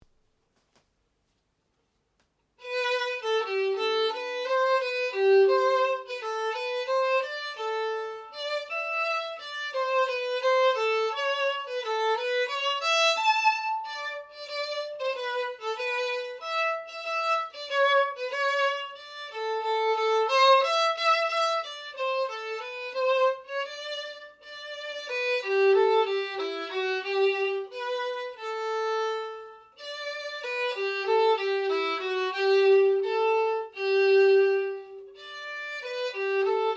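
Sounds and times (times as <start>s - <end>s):
violin: 2.6s - 36.7s.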